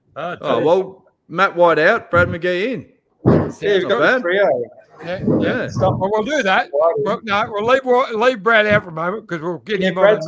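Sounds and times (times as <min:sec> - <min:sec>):
speech: 0:00.2 - 0:10.2
house door slamming with a heavy low thud: 0:03.2 - 0:03.8.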